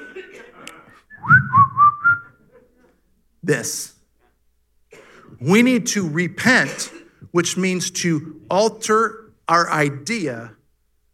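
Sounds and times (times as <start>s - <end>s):
person whistling sliding notes: 1.1s - 2.4s
speech: 3.5s - 4.0s, 5.4s - 10.6s.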